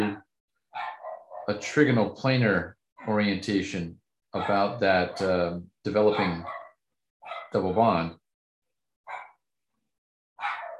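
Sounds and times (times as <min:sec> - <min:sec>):
short quiet dog barks at a lawnmower next door: 0:00.7 - 0:01.5, 0:04.4 - 0:05.4, 0:06.1 - 0:07.6, 0:09.0 - 0:09.4, 0:10.4 - 0:10.7
speech: 0:01.5 - 0:06.6, 0:07.5 - 0:08.2.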